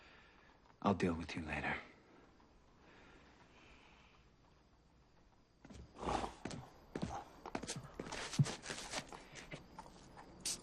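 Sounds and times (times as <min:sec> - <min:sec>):
speech: 0:00.8 - 0:01.9
horse hooves clip-clopping: 0:05.7 - 0:10.6.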